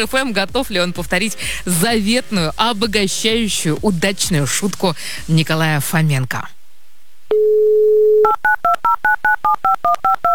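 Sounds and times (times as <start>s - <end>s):
speech: 0.0s - 6.6s, 7.3s - 10.3s
steady telephone dial tone: 7.3s - 10.3s.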